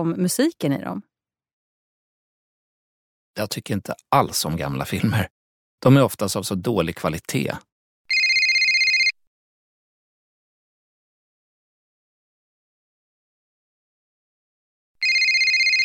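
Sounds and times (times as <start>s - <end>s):
speech: 0.0s - 1.1s, 3.4s - 7.7s
electronic telephone ringtone: 8.1s - 9.2s, 15.0s - 15.8s.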